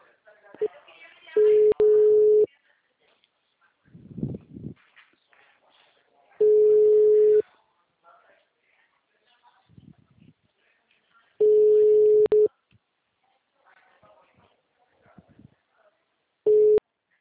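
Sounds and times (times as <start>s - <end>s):
unanswered telephone call ringback tone: 1.4s - 2.5s, 6.4s - 7.4s, 11.4s - 12.5s, 16.5s - 16.8s.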